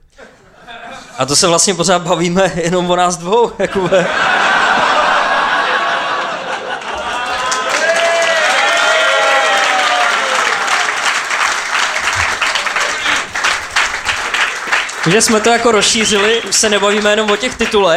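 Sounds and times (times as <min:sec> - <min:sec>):
scattered audience laughter: 0:00.1 - 0:01.7, 0:03.6 - 0:17.9
speech: 0:01.2 - 0:04.5, 0:15.1 - 0:17.9
live audience applause at a stage show: 0:04.2 - 0:17.9
audience shouts: 0:07.0 - 0:11.2
audience whoops and cheers: 0:07.0 - 0:11.2.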